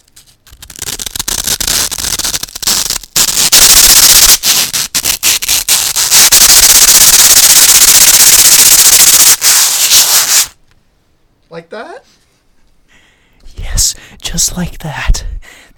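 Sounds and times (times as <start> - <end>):
sandpaper and styrofoam rubbed together: 0.0 - 10.6
speech: 14.6 - 15.2.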